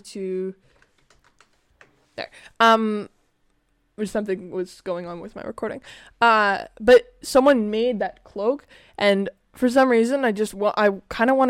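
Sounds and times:
speech: 0:00.0 - 0:00.8, 0:02.2 - 0:03.2, 0:04.0 - 0:11.4
typing on a computer keyboard: 0:00.7 - 0:02.0.

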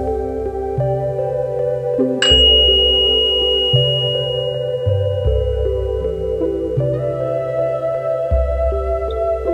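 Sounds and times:
soft ambient music with shifting low chords: 0:00.0 - 0:09.5
meditation bell struck once with a bright tone: 0:02.2 - 0:06.4.

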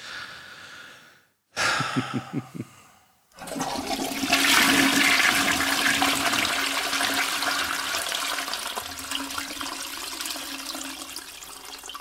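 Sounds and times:
laughter: 0:01.7 - 0:02.7
speech: 0:02.0 - 0:02.8
American toilet flushing: 0:03.4 - 0:11.9
toilet water swirling, draining and refilling: 0:03.4 - 0:11.9.

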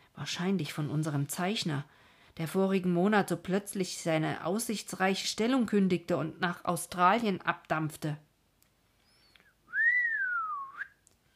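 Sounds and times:
speech: 0:00.2 - 0:08.3
soft whistle through the teeth: 0:09.0 - 0:11.3.

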